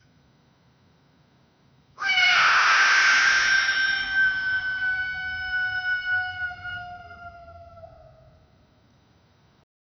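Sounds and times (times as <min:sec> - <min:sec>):
sharp falcon attack cry: 0:02.0 - 0:06.8.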